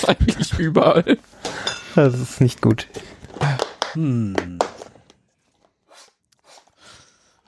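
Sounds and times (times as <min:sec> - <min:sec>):
speech: 0:00.0 - 0:01.3, 0:02.0 - 0:04.8
wet slurping of spilled cocktail sucked up off a table: 0:05.9 - 0:07.4.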